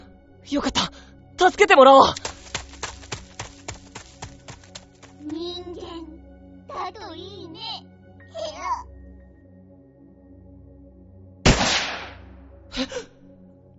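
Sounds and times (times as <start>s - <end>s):
speech: 0.4s - 2.2s, 6.8s - 8.9s, 12.8s - 13.1s
footsteps thudding: 2.2s - 5.4s
gunshot: 11.5s - 12.3s.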